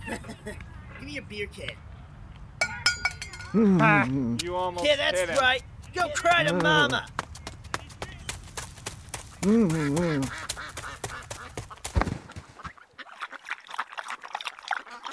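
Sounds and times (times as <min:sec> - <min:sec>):
speech: 0:00.1 - 0:01.9, 0:03.5 - 0:07.2, 0:09.4 - 0:10.5
water splashing on a pond: 0:09.3 - 0:15.1
duck quacking on a pond: 0:09.4 - 0:13.3
water trickling: 0:12.8 - 0:15.1.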